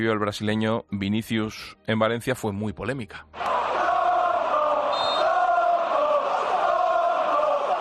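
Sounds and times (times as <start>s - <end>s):
speech: 0.0s - 3.5s
large football stadium crowd shouting and chanting insults: 3.4s - 7.7s.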